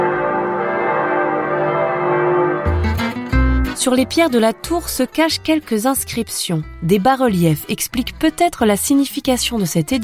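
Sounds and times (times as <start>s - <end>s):
church bells ringing from the Romanesque bell tower of Pisa Cathedral in Italy: 0.0s - 5.1s
speech: 3.8s - 10.0s.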